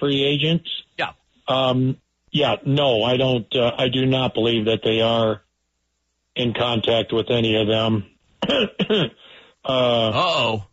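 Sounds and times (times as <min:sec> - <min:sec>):
speech: 0:00.0 - 0:05.4, 0:06.4 - 0:10.7
person clearing throat loudly: 0:08.4 - 0:10.6.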